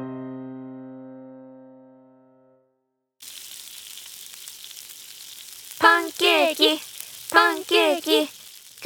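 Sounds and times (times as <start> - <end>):
pancakes frying and sizzling in a pan: 3.2 - 8.8.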